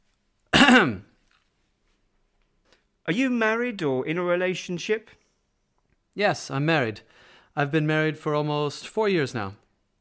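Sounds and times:
throaty cough to attract a waiter's attention: 0.5s - 1.1s
speech: 0.7s - 1.1s, 3.1s - 5.2s, 6.2s - 9.6s.

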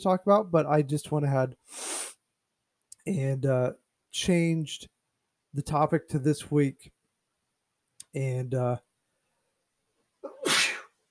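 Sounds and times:
speech: 0.0s - 2.1s, 3.1s - 4.9s, 5.5s - 7.0s, 8.1s - 8.9s
loud sneeze: 10.3s - 11.0s.

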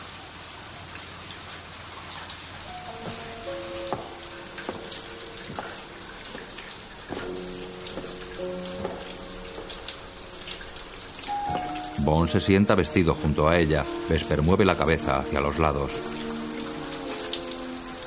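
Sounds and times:
water running from a shower: 0.0s - 18.0s
speech: 12.1s - 16.2s.

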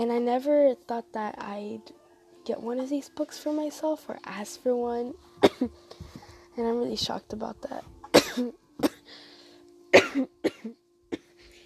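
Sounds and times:
speech: 0.0s - 6.0s, 6.6s - 9.2s, 10.1s - 10.8s
faint steady hum: 0.0s - 11.6s
harsh coughs: 5.4s - 5.8s, 8.1s - 9.1s, 9.9s - 11.6s.

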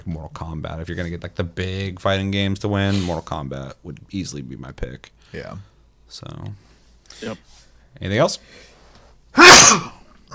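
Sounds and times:
speech: 0.0s - 8.7s, 9.3s - 10.3s
person sneezing: 2.9s - 3.2s, 9.4s - 10.3s.

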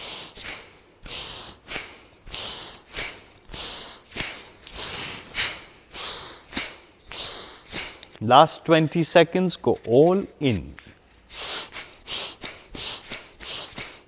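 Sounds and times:
rapid breathing in and out through the nose as a breathwork exercise: 0.0s - 8.2s, 11.2s - 14.0s
speech: 8.2s - 10.9s.

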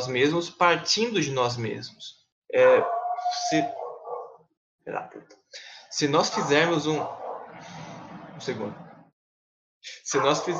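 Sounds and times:
speech: 0.0s - 3.8s, 4.8s - 7.8s, 8.4s - 8.8s, 9.8s - 10.5s
neighbor's dog barking: 2.6s - 4.4s, 6.2s - 7.6s, 10.1s - 10.5s.

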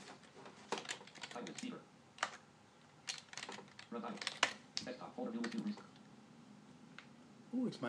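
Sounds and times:
clattery typing on an old computer keyboard: 0.7s - 2.4s, 3.1s - 5.9s.

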